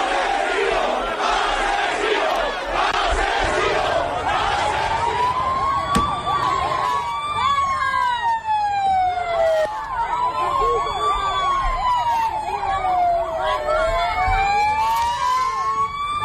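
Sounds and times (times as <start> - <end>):
angry crowd shouting and jeering in Paiporta: 0.0 - 8.4, 9.0 - 16.2
siren wailing up and down: 4.0 - 16.2
bang of a stick blow on a car: 5.9 - 6.2.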